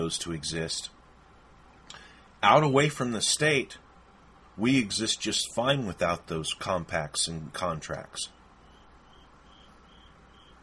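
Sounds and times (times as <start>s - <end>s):
quiet hiss: 0.0s - 10.6s
speech: 0.1s - 1.0s, 1.9s - 3.8s, 4.6s - 8.4s
cricket chirping: 8.3s - 10.6s.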